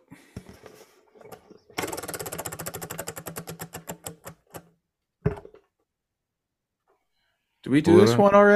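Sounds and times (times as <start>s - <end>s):
prize wheel being spun, ratcheting clicks: 1.8s - 4.7s
thump: 5.2s - 5.6s
speech: 7.7s - 8.5s.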